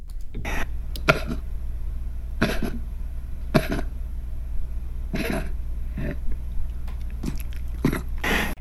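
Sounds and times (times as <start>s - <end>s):
low steady hum: 0.0s - 8.5s
dog with heart disease coughing with a fluid sound: 0.4s - 1.5s, 2.4s - 4.0s, 5.1s - 6.4s, 7.0s - 8.5s.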